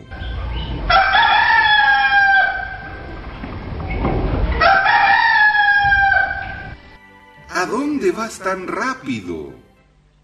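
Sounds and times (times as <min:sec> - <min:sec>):
rooster crowing: 0:00.1 - 0:03.3, 0:04.5 - 0:06.9
speech: 0:08.2 - 0:09.6.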